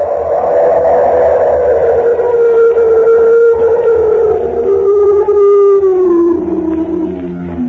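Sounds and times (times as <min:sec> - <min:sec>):
loud howl of a mountain monster on a high pass at the Tibetan border: 0:00.0 - 0:07.6
low rumbling undertone: 0:00.0 - 0:07.6.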